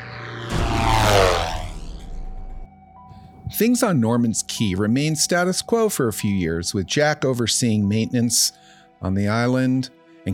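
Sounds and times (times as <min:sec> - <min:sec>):
plane engine roaring during takeoff: 0:00.0 - 0:02.7
speech: 0:03.6 - 0:10.3.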